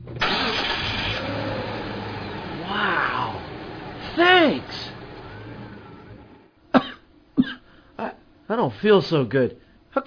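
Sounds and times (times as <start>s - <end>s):
car engine cranking, starting and idling: 0.0s - 6.5s
speech: 8.6s - 10.0s.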